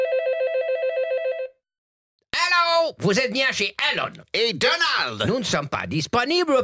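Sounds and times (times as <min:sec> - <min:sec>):
telephone ringing with trilling electronic tones: 0:00.0 - 0:01.6
speech: 0:02.9 - 0:06.6.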